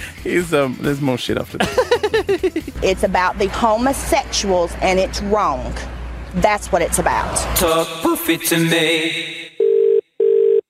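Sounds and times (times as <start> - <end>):
speech: 0.2 - 9.4
laughter: 1.4 - 2.8
telephone ringing tone on the line: 9.6 - 10.6.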